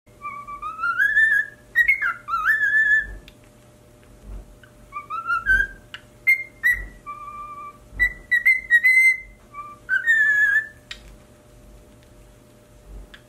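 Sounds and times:
cockatiel whistling: 0.2 - 3.3, 4.6 - 11.0.

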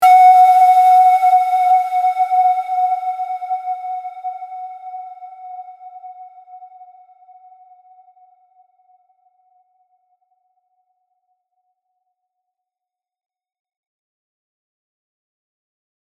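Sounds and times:
shepherd's ney flute: 0.0 - 6.9.

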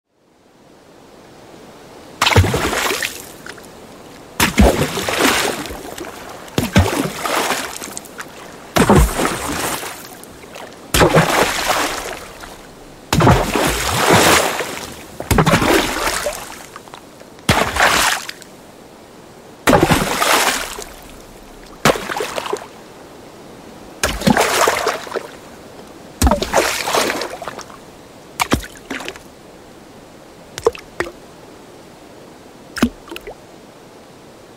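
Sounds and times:
splashing: 2.2 - 18.5, 19.7 - 22.8, 24.0 - 25.4, 26.2 - 27.8, 28.4 - 29.3, 30.6 - 31.2, 32.8 - 33.3.

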